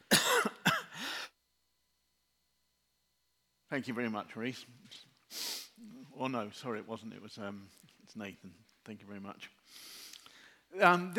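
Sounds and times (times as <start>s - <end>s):
person coughing: 0.0s - 1.2s
speech: 3.7s - 9.9s, 10.7s - 11.1s.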